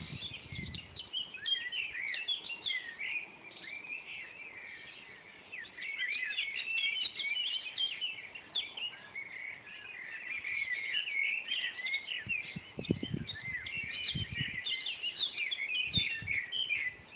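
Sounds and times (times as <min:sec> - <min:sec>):
Eurasian blackbirds singing at 5 a.m. in June: 0:00.0 - 0:17.1.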